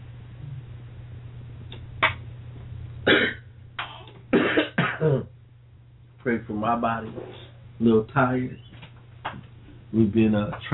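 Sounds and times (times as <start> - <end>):
steady low hum: 0.0 - 10.7
woman coughing in sharp raspy bursts: 3.1 - 5.3
speech: 6.2 - 8.7, 9.9 - 10.7.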